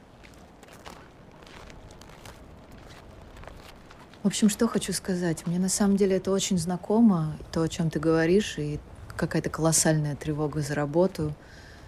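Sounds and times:
footsteps crunching on snow in forest: 0.0 - 5.6
speech: 4.2 - 11.6.

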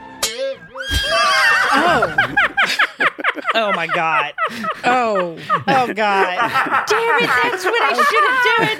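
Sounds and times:
horse neighing: 0.8 - 2.2
laughter: 1.1 - 8.7
speech: 3.6 - 8.7.

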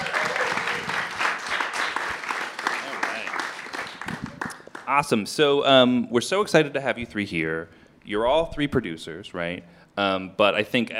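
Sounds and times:
audience applause at a live panel of independent film producers: 0.0 - 5.0
speech: 4.9 - 10.9.

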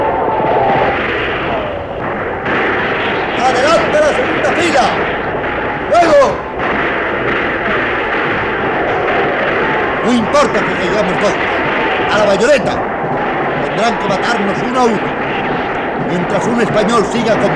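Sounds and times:
front rank of Spanish soldiers firing a volley in battle: 0.0 - 17.5
voices shouting in battle: 0.0 - 17.5
speech: 10.1 - 12.9, 13.8 - 15.4, 16.1 - 17.5.

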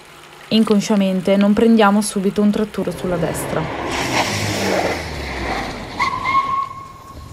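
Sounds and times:
speech: 0.5 - 4.2
heavy military truck engine revving on a road outside a village: 2.9 - 7.0.

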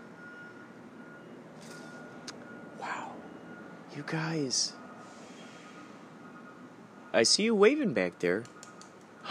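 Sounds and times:
truck reversing beeper: 0.0 - 9.2
speech: 4.0 - 4.8, 7.1 - 8.6.

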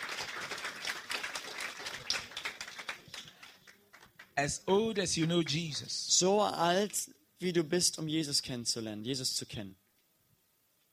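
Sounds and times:
crowd clapping: 0.0 - 4.4
speech: 4.4 - 9.8.

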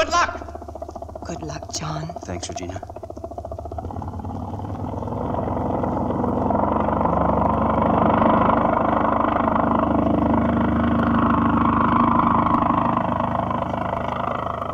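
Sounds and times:
airplane engine roaring during takeoff: 0.0 - 14.7
speech: 1.3 - 3.0.

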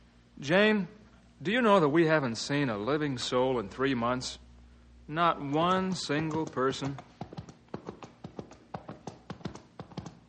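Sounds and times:
speech: 0.4 - 4.4, 5.1 - 7.1
hooves of a horse carrying a rider clip-clopping: 5.8 - 10.2.

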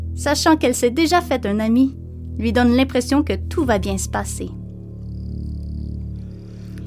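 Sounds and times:
speech: 0.2 - 4.6
chorus of frogs at dusk: 3.8 - 6.8
chorus of crickets at dusk: 3.9 - 6.8.

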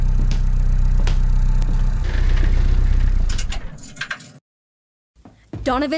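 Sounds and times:
car engine idling in garage: 0.0 - 3.3
speech: 5.7 - 5.9.

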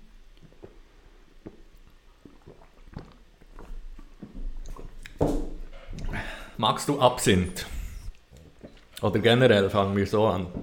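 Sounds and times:
person sipping water: 0.3 - 5.2, 7.6 - 9.0
speech: 6.6 - 7.8, 9.0 - 10.6.

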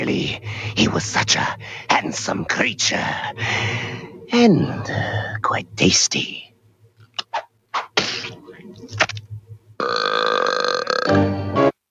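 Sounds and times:
speech: 0.0 - 6.5
loud belch: 9.8 - 11.3.

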